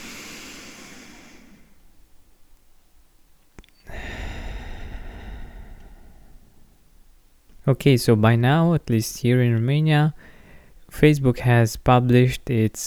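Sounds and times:
deep breath in and out: 0.0 - 2.0, 3.8 - 7.2, 10.2 - 10.9
speech: 7.7 - 10.3, 10.9 - 12.8.

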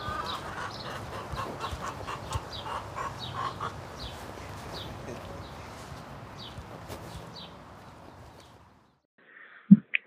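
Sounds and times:
chickens clucking: 0.0 - 5.2
noisy outdoor background: 0.0 - 10.0.

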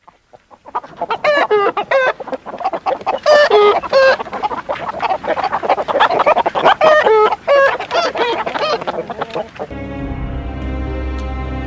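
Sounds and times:
angry chickens in a henhouse clucking and squawking: 0.0 - 9.7
steady musical tone: 9.7 - 11.6.

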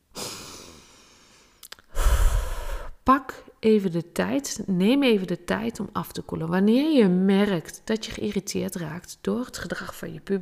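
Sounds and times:
person breathing in and out slowly: 0.1 - 3.0
mouth clicks: 1.6 - 2.9
speech: 3.1 - 10.3.

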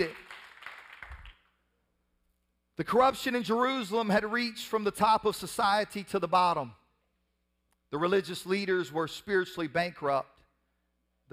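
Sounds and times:
speech: 0.0 - 0.2, 2.8 - 6.8, 7.9 - 10.3
crowd clapping hands in applause: 0.0 - 1.5.

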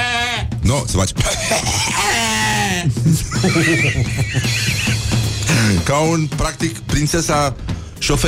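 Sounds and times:
person imitating a sheep bleating: 0.0 - 0.6, 1.5 - 2.9
speech: 0.7 - 2.1, 2.8 - 5.0, 5.6 - 8.2
laughter: 1.2 - 5.8.

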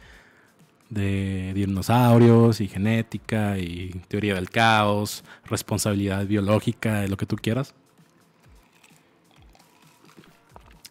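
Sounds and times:
speech: 0.9 - 7.8
faint wet mouth sounds: 8.4 - 10.8
sips and swallowing of a gin and tonic: 8.5 - 10.8.

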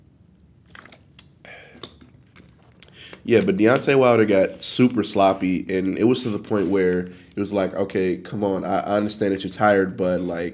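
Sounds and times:
person sipping water: 0.7 - 3.3
speech: 3.2 - 10.5.

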